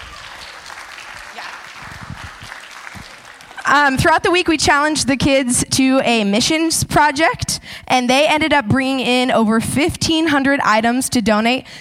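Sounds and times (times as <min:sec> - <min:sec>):
audience applauding volunteers: 0:00.0 - 0:04.1
speech: 0:03.7 - 0:11.7.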